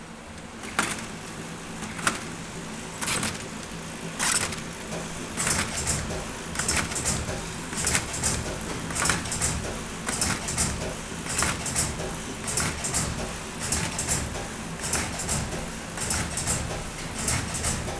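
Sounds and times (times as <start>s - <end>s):
CD machine: 0.3s - 17.9s.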